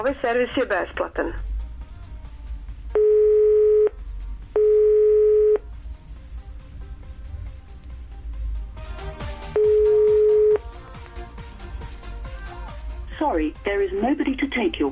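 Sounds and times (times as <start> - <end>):
speech: 0.0 - 1.5, 13.4 - 14.9
telephone busy signal while calling a service phone line: 3.0 - 4.0, 4.6 - 5.6, 9.6 - 10.6.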